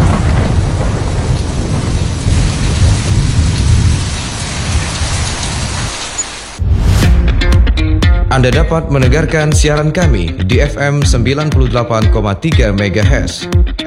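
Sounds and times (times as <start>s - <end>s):
heavy rain pouring: 0.0s - 7.5s
deep rumbles of thunder: 0.0s - 10.6s
speech: 8.4s - 13.8s.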